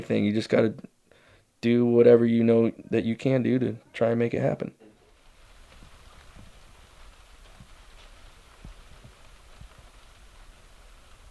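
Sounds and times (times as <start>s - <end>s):
speech: 0.0s - 0.9s, 1.6s - 4.8s
steady rain falling during a fishing trip: 4.9s - 11.2s.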